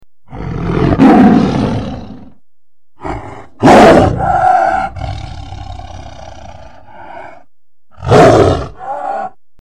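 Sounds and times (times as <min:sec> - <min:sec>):
tiger: 0:00.3 - 0:02.4, 0:03.0 - 0:09.4.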